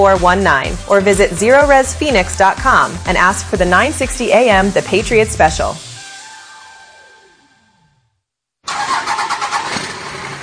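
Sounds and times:
speech: 0:00.0 - 0:05.8
descending whine: 0:05.8 - 0:08.3
diesel truck engine starting and running roughly: 0:08.7 - 0:10.4.

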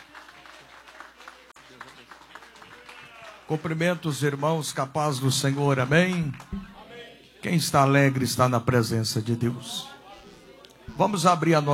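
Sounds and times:
church audience applauding to welcome a pastor: 0:00.0 - 0:07.1
speech: 0:03.5 - 0:06.8, 0:07.4 - 0:09.9, 0:11.0 - 0:11.7.

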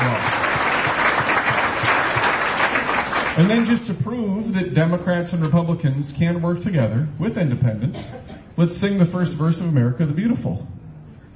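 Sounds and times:
audience applause at a gathering of Democrats, Republicans and independents: 0:00.0 - 0:03.6
speech: 0:03.4 - 0:10.7.

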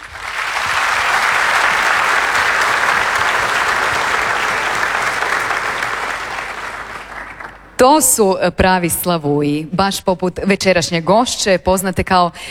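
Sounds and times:
concert audience applause at a folk music performance: 0:00.0 - 0:07.8
speech: 0:07.8 - 0:12.4.

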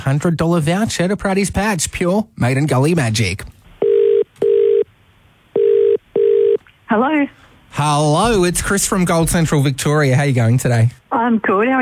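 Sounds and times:
speech: 0:00.0 - 0:03.6, 0:06.9 - 0:11.7
telephone ringback tone as a radio station calls a contest winner: 0:03.8 - 0:04.9, 0:05.6 - 0:06.6.

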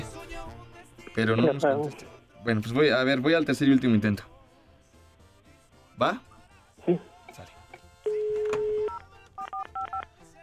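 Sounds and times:
speech: 0:01.2 - 0:04.3, 0:06.0 - 0:07.5
telephone dial tone: 0:08.1 - 0:10.1
telephone keypad beeps: 0:08.1 - 0:10.1.

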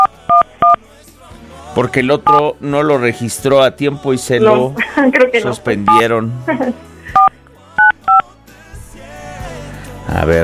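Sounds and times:
electronic telephone keypad tones as a number is dialed: 0:00.0 - 0:00.8, 0:07.1 - 0:08.2
speech: 0:01.8 - 0:06.9.

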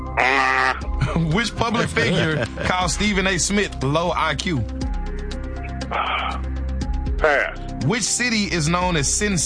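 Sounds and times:
person imitating a donkey's bray in answer to a quiz question: 0:00.2 - 0:00.9, 0:05.9 - 0:06.4, 0:07.2 - 0:07.6
speech: 0:00.2 - 0:04.8, 0:07.2 - 0:09.4
laughter: 0:01.0 - 0:03.1.

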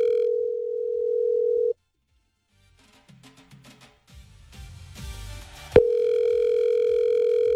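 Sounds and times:
telephone dial tone: 0:00.0 - 0:01.7, 0:05.8 - 0:07.5.

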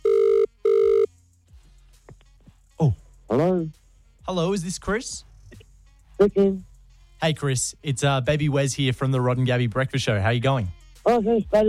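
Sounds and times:
telephone ringback tone after dialing: 0:00.0 - 0:01.1
speech: 0:04.3 - 0:05.3, 0:06.2 - 0:11.6.

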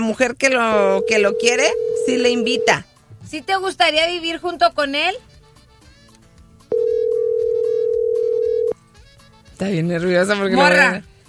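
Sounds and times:
speech: 0:00.0 - 0:05.3, 0:09.6 - 0:11.1
telephone call ringing out while joining a caller: 0:00.8 - 0:02.8, 0:06.7 - 0:08.8.

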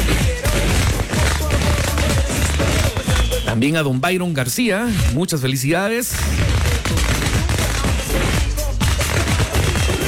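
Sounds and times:
long string of firecrackers exploding: 0:00.0 - 0:03.6, 0:06.1 - 0:10.0
speech: 0:03.6 - 0:06.6.

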